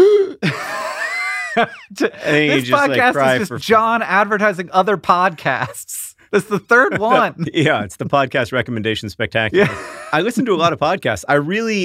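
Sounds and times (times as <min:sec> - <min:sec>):
person vocally imitating a sudden gasp of emotional stress: 0:00.0 - 0:00.4
laughter: 0:00.4 - 0:03.7, 0:06.4 - 0:08.5, 0:09.6 - 0:11.1
speech: 0:01.6 - 0:11.8.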